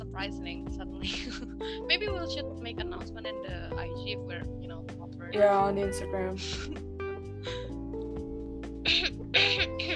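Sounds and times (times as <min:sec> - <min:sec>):
speech: 0:00.2 - 0:07.7, 0:08.9 - 0:09.9
person clearing throat with a gravelly rasp: 0:08.9 - 0:09.8.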